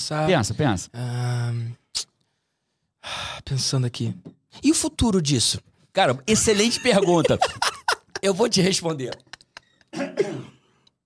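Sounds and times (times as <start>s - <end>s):
speech: 0.0s - 2.1s, 3.0s - 9.3s
faint breaths: 2.2s - 3.5s
laughter: 6.3s - 10.0s
loud throat clearing and short rough cough: 9.9s - 10.8s.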